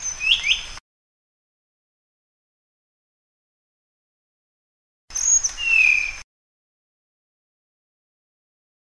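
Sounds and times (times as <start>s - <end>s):
Sunda flycatcher song of high slurred whistles: 0.0s - 0.8s, 5.1s - 6.3s.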